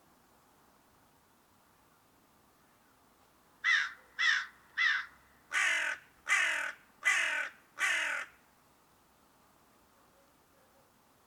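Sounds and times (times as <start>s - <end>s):
crow giving harsh raucous caws: 3.6s - 8.4s.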